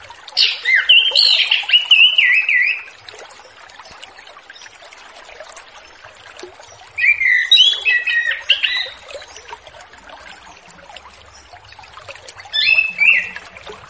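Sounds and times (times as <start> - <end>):
Orange-headed thrush singing whistled and warbled notes: 0.4 - 2.9, 7.0 - 9.1, 12.5 - 13.6.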